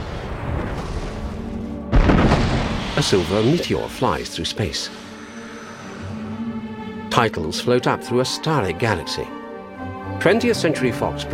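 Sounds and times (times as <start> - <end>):
explosions blowing holes in a planet: 0.0 - 4.4
speech: 3.0 - 5.0, 7.2 - 9.4, 10.2 - 11.3.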